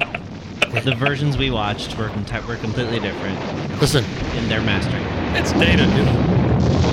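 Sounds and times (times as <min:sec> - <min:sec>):
ray gun sound effect from a film: 0:00.0 - 0:01.6, 0:03.8 - 0:06.2
laughter: 0:00.0 - 0:03.1, 0:05.4 - 0:06.2
speech: 0:00.8 - 0:06.8.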